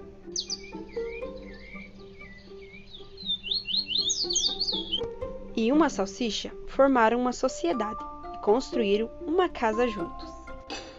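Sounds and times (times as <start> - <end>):
soft sustained musical backing: 0.0 - 10.9
bird squawking and chirping: 0.3 - 5.1
speech: 5.6 - 10.3.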